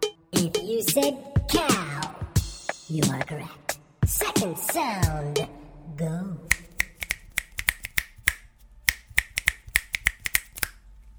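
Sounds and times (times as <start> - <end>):
speech: 0.4 - 2.2, 2.9 - 6.5
fingers snapping: 6.5 - 10.8.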